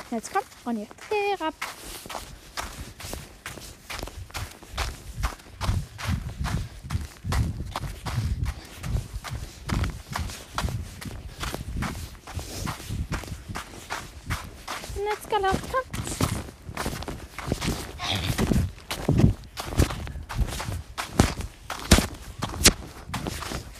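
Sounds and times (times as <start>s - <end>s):
footsteps of a person trotting with a hobby horse: 0.0s - 23.7s
speech: 0.1s - 2.3s, 15.3s - 15.9s.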